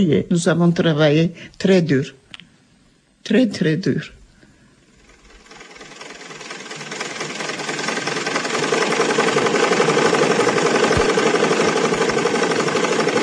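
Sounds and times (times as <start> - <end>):
speech: 0.0 - 2.2, 3.2 - 4.2
sewing machine running for home tailoring: 4.8 - 13.2.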